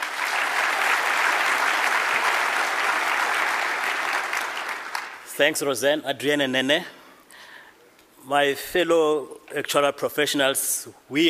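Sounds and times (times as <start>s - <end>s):
sizable audience applauding at a convention of actuarial professionals: 0.0s - 5.3s
speech: 5.4s - 7.0s, 8.3s - 11.2s.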